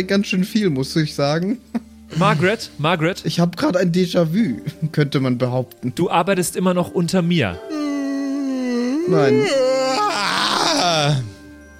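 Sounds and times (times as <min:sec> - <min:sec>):
speech: 0:00.0 - 0:07.8, 0:09.1 - 0:09.7, 0:11.0 - 0:11.3
single person yawning loudly: 0:07.7 - 0:11.4.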